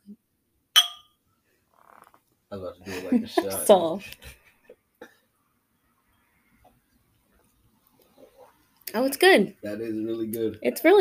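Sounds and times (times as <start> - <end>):
wine glasses holding Riesling white wine clinking in a toast: 0.8 - 1.2
speech: 2.5 - 4.4, 9.0 - 11.0
laughter: 2.8 - 4.7.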